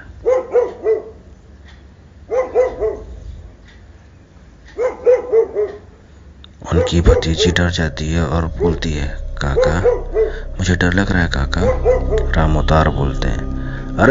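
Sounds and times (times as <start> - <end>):
dogs barking beside a road in Uttar Pradesh India: 0.2 - 1.3, 2.2 - 3.2, 4.7 - 6.0, 6.6 - 7.7, 11.5 - 12.4
speech: 6.9 - 14.1.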